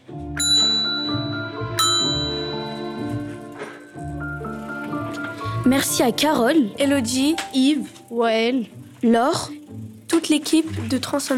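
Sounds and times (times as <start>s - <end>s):
bell ringing: 0.4s - 5.2s
speech: 5.6s - 9.6s, 10.2s - 11.3s.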